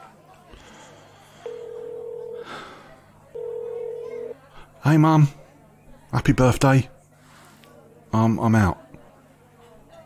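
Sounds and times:
electronic phone dialing tones: 0:01.4 - 0:02.4, 0:03.3 - 0:04.4
speech: 0:04.8 - 0:05.4, 0:06.1 - 0:06.9, 0:08.1 - 0:08.8.

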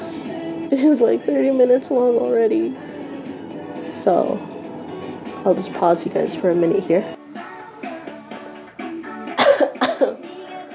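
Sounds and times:
speech: 0:00.7 - 0:02.9, 0:04.0 - 0:04.5, 0:05.4 - 0:07.2
person coughing: 0:09.4 - 0:10.2.

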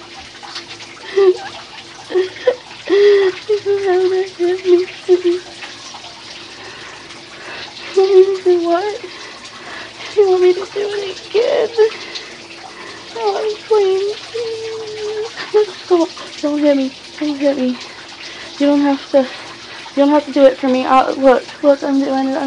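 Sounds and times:
water running from a tap while someone washes: 0:00.0 - 0:22.4
speech: 0:16.6 - 0:17.9, 0:18.6 - 0:19.4, 0:20.0 - 0:22.4.

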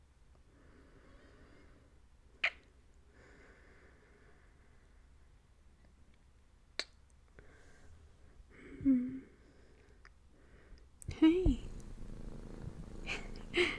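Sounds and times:
cat purring: 0:11.0 - 0:13.7.

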